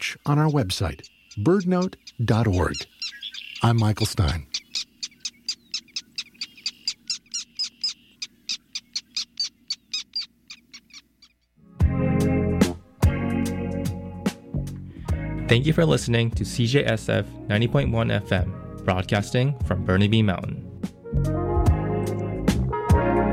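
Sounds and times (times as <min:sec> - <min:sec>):
Black Tern calls: 0:00.0 - 0:11.6
speech: 0:00.2 - 0:04.5, 0:15.5 - 0:21.4
loud music: 0:11.8 - 0:14.5, 0:21.2 - 0:23.3.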